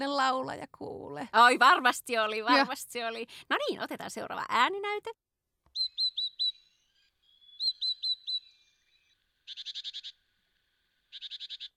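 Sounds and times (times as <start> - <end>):
speech: 0.0 - 5.3
small yellow-breasted songbird from Central European mountains whistling: 5.7 - 10.1.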